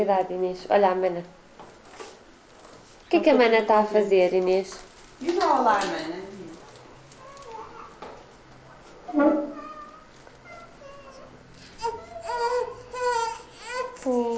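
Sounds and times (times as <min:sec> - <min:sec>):
speech: 0:00.0 - 0:01.4, 0:03.1 - 0:06.3, 0:09.1 - 0:09.6, 0:14.0 - 0:14.3
baby crying in short wavering wails: 0:07.2 - 0:08.0, 0:09.4 - 0:14.3.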